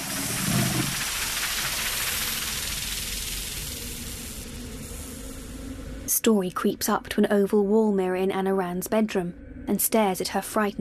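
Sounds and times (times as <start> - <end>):
lawn sprinklers switching on and spraying water: 0.0 - 5.7
speech: 6.2 - 10.7.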